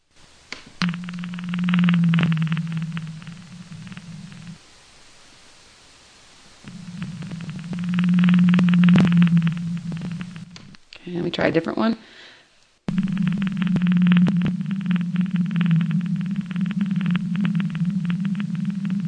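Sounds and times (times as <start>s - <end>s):
steady hiss of underwater noise: 0.1s - 10.6s, 12.9s - 19.0s
blue whale vocalization with low droning moans: 0.8s - 4.6s, 6.6s - 10.6s, 12.9s - 19.0s
speech: 11.4s - 12.2s.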